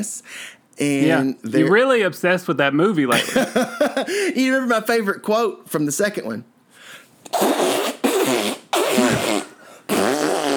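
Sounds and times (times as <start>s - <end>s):
speech: 0.0s - 6.5s
man making fart noises with his mouth: 7.3s - 10.5s.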